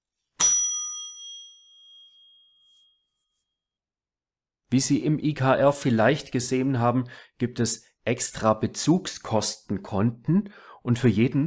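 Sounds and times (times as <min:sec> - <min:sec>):
bell being struck: 0:00.4 - 0:02.8
speech: 0:04.7 - 0:11.4.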